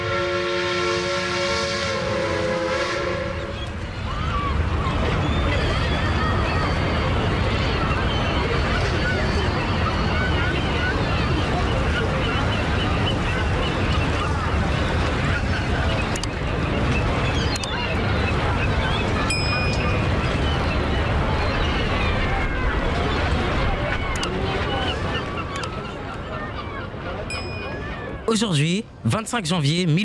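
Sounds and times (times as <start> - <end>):
ship horn honking at sea: 0.0 - 3.6
wind at sea: 0.0 - 30.0
rolling waves at sea: 1.9 - 30.0
speech: 28.4 - 30.0.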